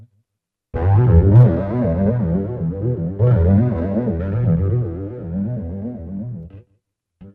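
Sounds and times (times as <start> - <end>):
keyboards: 0.7 - 6.5.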